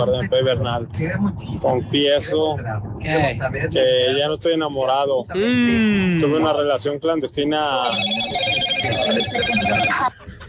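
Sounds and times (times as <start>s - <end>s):
speech: 0.0s - 10.4s
electronic telephone ring as a call is placed: 7.8s - 10.1s.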